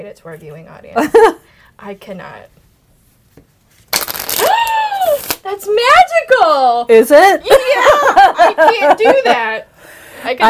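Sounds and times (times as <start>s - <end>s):
speech: 0.0s - 2.6s, 5.4s - 10.4s
bridge shuffle of playing cards: 3.3s - 5.4s
laughter: 7.5s - 9.6s.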